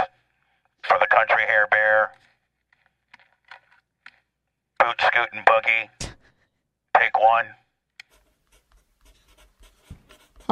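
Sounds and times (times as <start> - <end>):
speech: 1.2 - 2.3, 4.9 - 6.0, 7.0 - 7.6
pencil scribbling on paper: 8.1 - 10.5.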